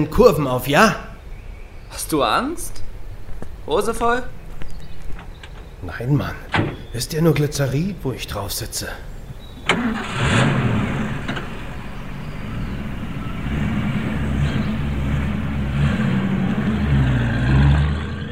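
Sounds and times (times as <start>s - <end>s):
speech: 0.0s - 1.1s, 1.9s - 2.8s, 3.7s - 4.4s, 5.8s - 9.1s
heavy military truck engine cranking and starting: 9.1s - 18.3s.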